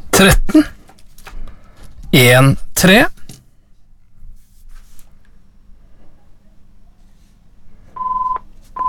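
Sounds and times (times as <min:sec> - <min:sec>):
speech: 0:00.2 - 0:00.8, 0:02.1 - 0:03.2
telephone ringing with short electronic tone bursts: 0:08.0 - 0:08.8.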